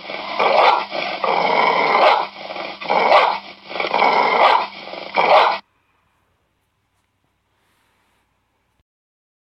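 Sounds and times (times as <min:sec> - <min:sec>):
American Pit Bull Terrier growling: 0:00.0 - 0:05.6
American Pit Bull Terrier barking: 0:00.4 - 0:00.9, 0:01.9 - 0:02.3, 0:02.9 - 0:03.4, 0:04.3 - 0:05.6.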